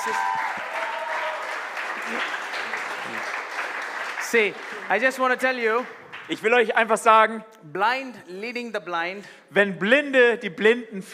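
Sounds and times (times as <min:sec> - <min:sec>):
speech: 0:00.0 - 0:00.4, 0:04.3 - 0:11.1
crowd applauding: 0:00.0 - 0:06.7.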